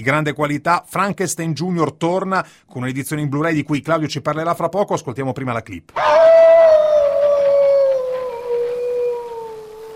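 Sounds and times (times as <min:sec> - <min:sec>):
speech: 0:00.0 - 0:06.4
wolf howling: 0:06.0 - 0:09.9.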